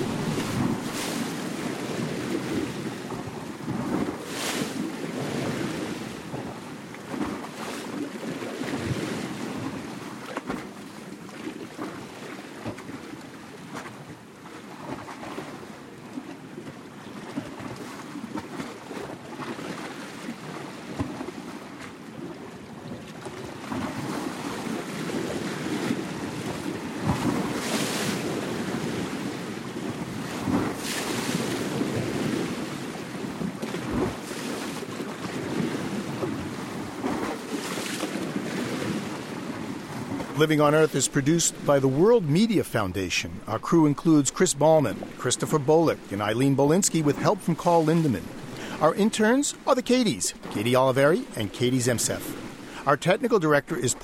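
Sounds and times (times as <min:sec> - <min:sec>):
waves washing against a rocky shoreline and swirling among stones: 0:00.0 - 0:54.0
speech: 0:40.4 - 0:54.0.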